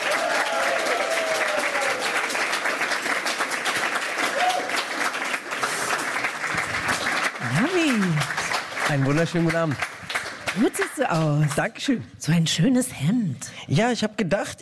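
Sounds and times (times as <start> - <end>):
cheers and whoops from a crowd: 0.0 - 2.4, 4.2 - 4.9
loud sustained applause from a sizable crowd welcoming a guest: 0.0 - 11.6
speech: 8.9 - 9.9, 10.6 - 14.6.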